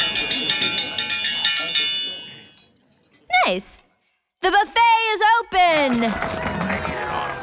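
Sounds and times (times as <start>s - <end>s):
bright high dinner bell ringing: 0.0s - 3.2s
speech: 3.5s - 3.8s, 4.4s - 6.7s.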